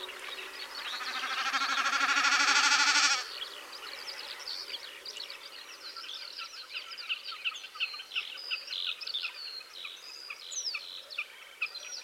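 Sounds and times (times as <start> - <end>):
chorus of other birds: 0.0 - 12.0
Common snipe buzzy winnowing: 0.8 - 3.2.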